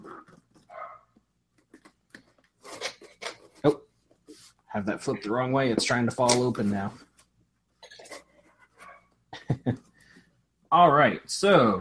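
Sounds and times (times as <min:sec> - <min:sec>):
dog yelping with whiny notes: 0:00.7 - 0:01.0
dog barking: 0:00.7 - 0:01.1
speech: 0:03.6 - 0:03.8, 0:04.7 - 0:07.1, 0:10.8 - 0:11.7.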